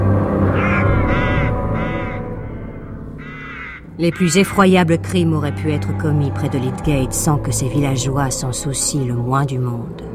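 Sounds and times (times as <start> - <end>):
dense low drone: 0.0 - 10.1
crows cawing around an abandoned manor: 0.4 - 6.8
speech: 4.0 - 10.1.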